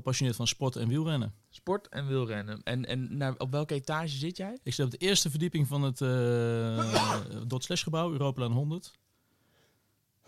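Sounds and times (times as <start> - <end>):
speech: 0.0 - 9.0
sneeze: 6.8 - 7.3
faint breathing: 9.1 - 10.0.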